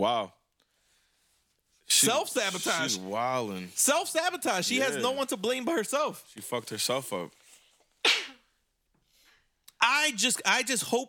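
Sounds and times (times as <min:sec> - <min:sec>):
speech: 0:00.0 - 0:00.4, 0:01.9 - 0:07.4, 0:09.8 - 0:11.0
person sneezing: 0:02.4 - 0:03.0, 0:08.0 - 0:08.5.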